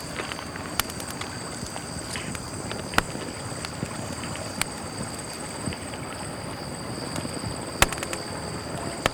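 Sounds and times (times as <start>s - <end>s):
small campfire: 0.0s - 9.1s.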